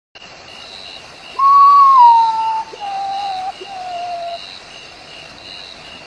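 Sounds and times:
Nyctibius potoo bird: 1.4 - 4.4.

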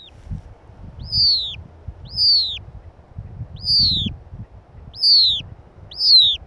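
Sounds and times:
low background rumble: 0.0 - 6.4
noble snipe whistled call: 1.0 - 2.6, 3.6 - 4.1, 5.0 - 6.4.

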